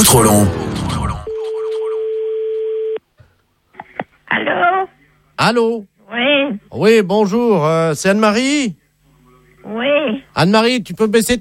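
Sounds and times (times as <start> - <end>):
speech: 0.0 - 0.8, 5.4 - 8.8, 9.6 - 11.4
telephone busy tone after call hung up by a computer: 1.2 - 3.0.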